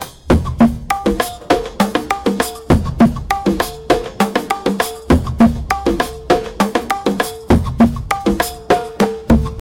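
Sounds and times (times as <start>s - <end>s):
afrobeat music: 0.0s - 9.6s.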